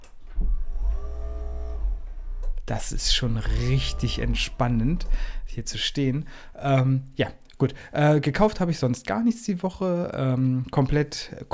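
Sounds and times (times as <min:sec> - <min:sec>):
motorised height-adjustable desk column motor hum: 0:00.0 - 0:07.2
low rumble: 0:00.0 - 0:08.8
speech: 0:02.7 - 0:11.5.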